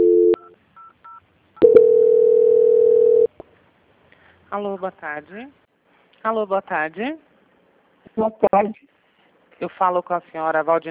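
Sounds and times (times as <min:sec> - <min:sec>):
telephone line tone during a call transfer: 0:00.0 - 0:00.5, 0:01.6 - 0:03.3
speech: 0:04.6 - 0:05.6, 0:06.2 - 0:07.3, 0:08.2 - 0:08.9, 0:09.6 - 0:10.8.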